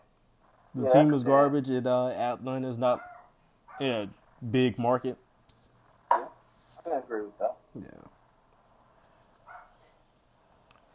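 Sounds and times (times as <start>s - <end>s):
speech: 0.7s - 3.1s, 3.8s - 5.2s, 6.8s - 8.1s
dog barking: 3.0s - 4.0s, 9.4s - 9.8s.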